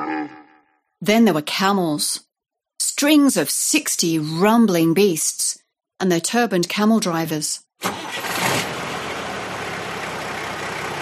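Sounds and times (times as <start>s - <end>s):
speech: 1.0s - 2.3s, 2.9s - 8.1s
battered old mail truck engine roaring over sandhills on the Birdsville Track: 7.8s - 11.0s.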